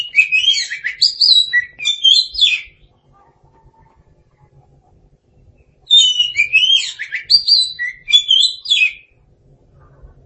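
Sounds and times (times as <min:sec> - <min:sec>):
Oriental magpie-robin singing: 0:00.0 - 0:02.9, 0:05.6 - 0:09.2.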